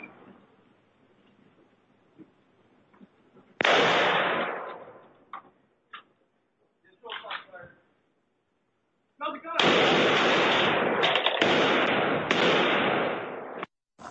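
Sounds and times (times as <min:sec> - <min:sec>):
gunshot caught by a doorbell camera: 0:03.6 - 0:05.0, 0:09.6 - 0:13.7.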